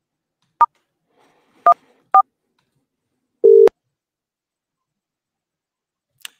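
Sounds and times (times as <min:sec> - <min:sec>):
longer lower telephone call connecting tone: 0:03.4 - 0:03.7
short telephone dialing beeps: 0:03.4 - 0:03.7.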